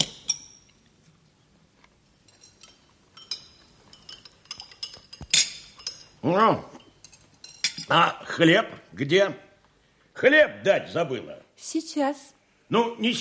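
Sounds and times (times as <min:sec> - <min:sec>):
spoon clinking against a soup bowl: 0:00.0 - 0:00.8, 0:02.3 - 0:07.9
speech: 0:06.2 - 0:06.7, 0:07.9 - 0:09.4, 0:10.2 - 0:13.1.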